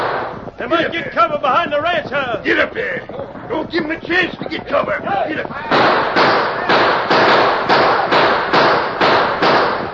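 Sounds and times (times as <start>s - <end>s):
gunshots from riders in a western radio drama battle: 0.0s - 0.4s, 5.7s - 9.9s
speech: 0.6s - 6.5s.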